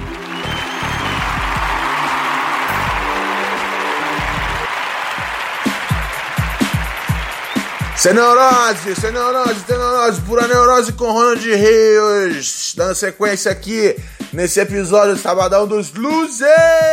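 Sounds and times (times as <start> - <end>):
audience applauding: 0.0 - 11.0
sharp rhythmic hits: 0.0 - 15.6
musical backing: 0.0 - 16.9
speech: 8.0 - 16.9.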